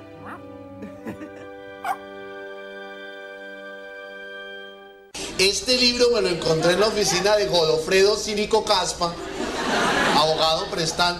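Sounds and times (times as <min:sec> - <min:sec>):
small puppy yipping and whimpering in a child's hands: 0:00.2 - 0:00.5, 0:01.8 - 0:02.0
laughter: 0:00.8 - 0:01.5, 0:09.1 - 0:11.1
speech: 0:05.4 - 0:09.4, 0:10.2 - 0:11.1.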